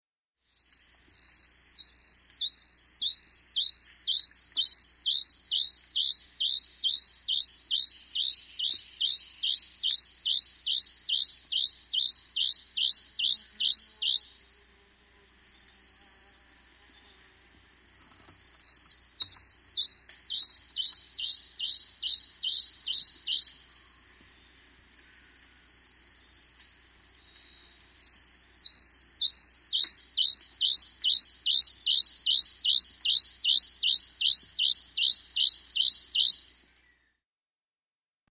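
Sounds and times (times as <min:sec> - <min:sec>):
Plain-throated antwren calling in South America: 0:00.4 - 0:14.4, 0:17.9 - 0:23.8, 0:27.4 - 0:37.0.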